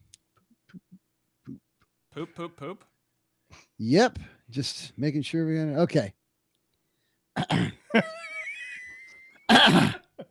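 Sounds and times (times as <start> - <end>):
speech: 2.1 - 2.9, 3.8 - 6.2, 7.4 - 8.2
man clearing throat: 7.3 - 7.9, 9.5 - 10.2.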